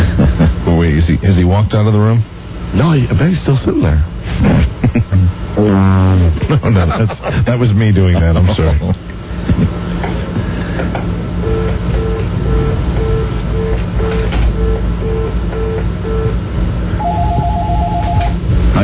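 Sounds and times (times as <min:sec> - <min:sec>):
laughter: 0:00.0 - 0:00.8, 0:04.4 - 0:09.8
constant noisy hum: 0:00.0 - 0:18.8
speech: 0:01.2 - 0:05.0, 0:05.6 - 0:10.2
telephone ringing tones through a phone line: 0:17.0 - 0:18.4.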